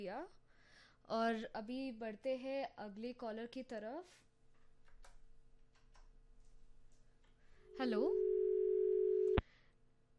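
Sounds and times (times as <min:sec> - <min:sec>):
speech: 0:00.0 - 0:00.4, 0:01.0 - 0:04.3, 0:07.8 - 0:08.3
telephone line tone after a dropped call: 0:07.7 - 0:09.4.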